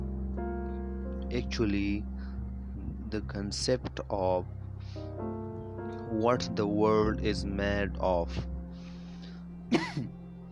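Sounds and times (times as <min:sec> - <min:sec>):
steady low hum: 0:00.0 - 0:10.5
speech: 0:01.3 - 0:02.1, 0:03.1 - 0:05.4, 0:06.1 - 0:08.5, 0:09.7 - 0:10.2
person coughing: 0:09.7 - 0:10.1.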